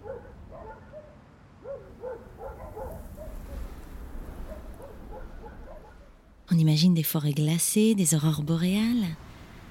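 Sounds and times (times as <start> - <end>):
pack of sled dogs barking, yelping and whimpering: 0.0 - 3.7, 4.4 - 6.1
speech: 6.5 - 9.2.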